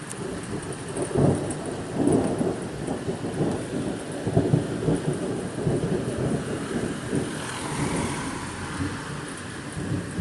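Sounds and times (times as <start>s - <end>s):
deep rumbles of thunder: 0.0s - 10.2s
heavy rain pouring: 0.0s - 10.2s
wind buffeting: 0.1s - 10.2s.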